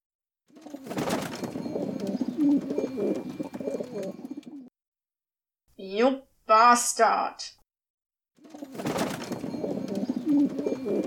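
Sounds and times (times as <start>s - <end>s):
pigeons cooing: 0.5s - 4.7s, 8.4s - 11.0s
speech: 5.9s - 7.6s, 10.3s - 11.0s.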